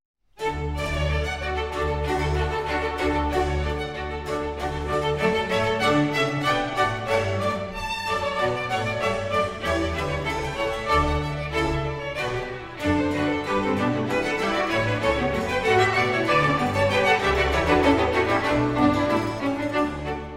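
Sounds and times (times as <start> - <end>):
harpsichord concerto: 0.4 - 20.3.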